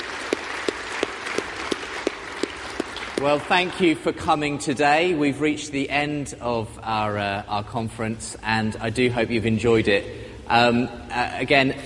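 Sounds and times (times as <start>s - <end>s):
conference audience applause: 0.0s - 3.9s
sharp claps: 0.0s - 4.0s
speech: 3.2s - 11.8s.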